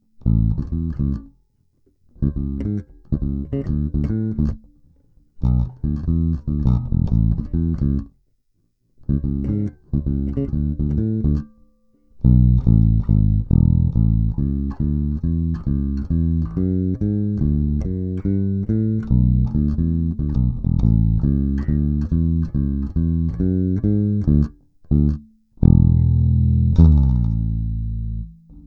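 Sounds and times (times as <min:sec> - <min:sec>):
bass guitar with 40-60-80-100 strings: 0:00.0 - 0:01.4, 0:02.1 - 0:08.2, 0:09.0 - 0:28.6.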